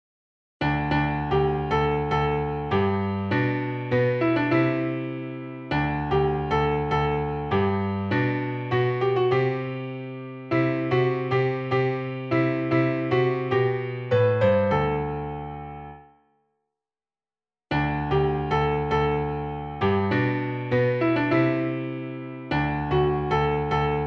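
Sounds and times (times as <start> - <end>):
piano: 0.6 - 16.3, 17.7 - 24.0.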